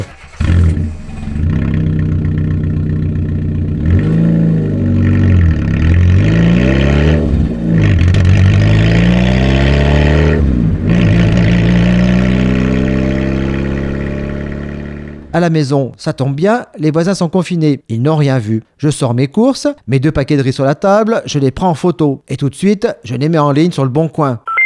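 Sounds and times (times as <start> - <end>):
car engine revving and shifting gears: 0.0 - 15.4
speech: 15.4 - 24.5.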